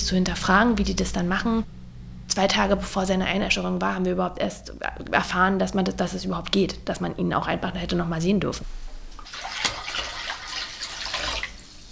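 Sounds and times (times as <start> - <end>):
speech: 0.1 - 1.8, 2.4 - 8.8
running water filling a basin for a foot bath in Berlin-Kreuzberg: 9.1 - 11.9.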